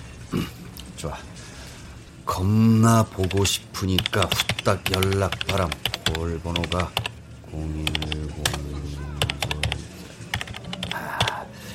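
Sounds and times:
speech: 0.3s - 1.5s, 2.3s - 9.1s
computer keyboard typing: 3.2s - 7.2s, 7.8s - 11.4s.

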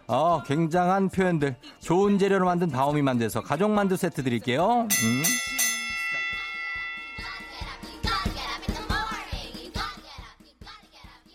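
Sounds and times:
speech: 0.1s - 5.7s
bell ringing: 4.9s - 9.3s
sharp rhythmic metallic strikes: 4.9s - 9.3s.

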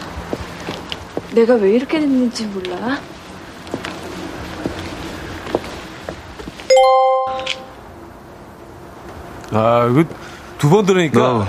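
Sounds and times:
speech: 1.3s - 3.1s, 9.5s - 11.4s
single bright ding chime: 6.7s - 7.8s.

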